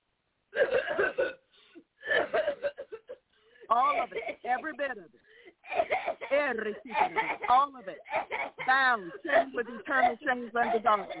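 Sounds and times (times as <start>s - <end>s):
person coughing harshly: 0.6s - 1.4s, 2.0s - 3.2s, 3.8s - 4.8s, 5.6s - 11.1s
speech: 4.1s - 11.1s.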